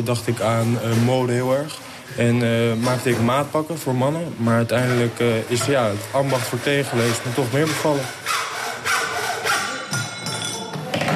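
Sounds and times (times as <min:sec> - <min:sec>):
speech: 0:00.0 - 0:08.4
hand saw cutting through wood in a carpentry workshop: 0:04.8 - 0:09.8.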